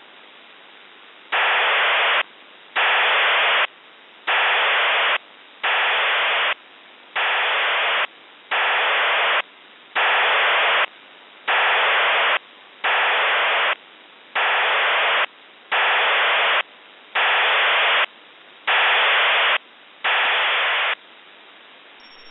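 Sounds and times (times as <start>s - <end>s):
Russian 3000 baud 8PSK serial tone modem signal: 1.3s - 2.2s, 2.8s - 3.7s, 4.3s - 6.6s, 7.2s - 10.9s, 11.5s - 13.8s, 14.4s - 21.0s.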